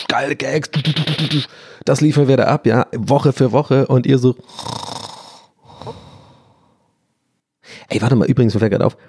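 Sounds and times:
speech: 0:00.1 - 0:04.8, 0:07.9 - 0:09.0
voice imitating exaggerated cartoon-style snoring: 0:04.4 - 0:06.5.

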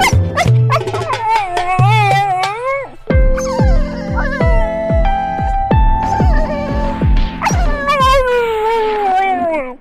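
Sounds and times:
plucked chord-like notes: 0:00.0 - 0:02.3, 0:02.9 - 0:08.2
dog yipping and whining: 0:00.0 - 0:09.7.

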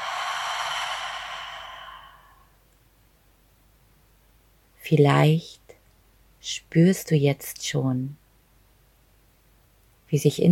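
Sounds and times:
slow deep breath in and out: 0:00.0 - 0:02.6
speech: 0:04.9 - 0:05.6, 0:06.4 - 0:08.2, 0:10.1 - 0:10.5.

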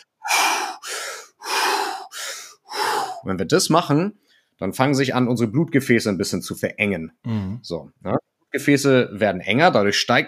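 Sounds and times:
rapid forceful exhaling in a breathwork exercise: 0:00.0 - 0:03.3
speech: 0:03.2 - 0:10.2.

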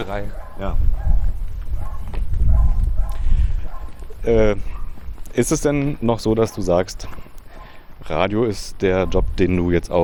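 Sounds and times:
speech: 0:00.0 - 0:01.2, 0:04.2 - 0:04.8, 0:05.4 - 0:07.2, 0:08.0 - 0:10.0
small dog barking behind the gate of a butcher's shop: 0:00.0 - 0:05.0, 0:07.5 - 0:07.8.

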